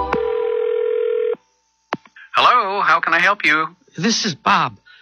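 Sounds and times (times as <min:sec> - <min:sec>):
telephone dial tone: 0:00.2 - 0:01.4
speech: 0:03.2 - 0:04.8.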